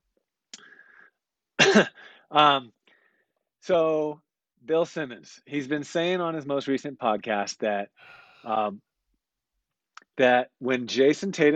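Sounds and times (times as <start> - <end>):
person coughing: 1.6 - 2.2
speech: 1.8 - 2.8, 3.6 - 8.9, 10.2 - 11.5.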